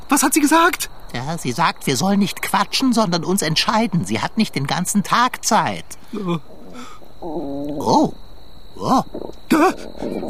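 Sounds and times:
speech: 0:00.1 - 0:08.2, 0:08.8 - 0:10.2
drawn-out stomach growl with wavering swooping pitch: 0:05.9 - 0:10.2.

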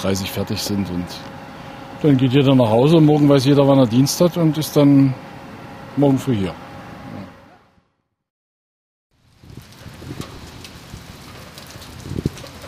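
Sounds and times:
speech: 0:00.0 - 0:01.4, 0:02.0 - 0:05.3, 0:06.0 - 0:06.6
steady rain pattering on a hard surface: 0:09.1 - 0:12.6.

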